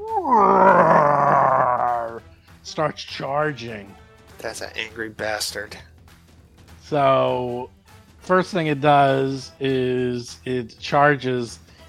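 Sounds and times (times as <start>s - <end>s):
video game monster roaring: 0.0s - 2.2s
speech: 2.8s - 5.9s, 6.9s - 11.6s.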